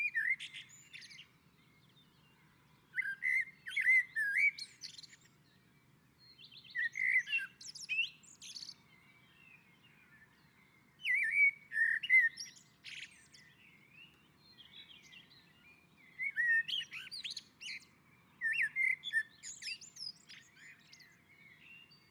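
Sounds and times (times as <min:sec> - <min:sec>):
common blackbird singing on a roof: 0:00.0 - 0:22.0.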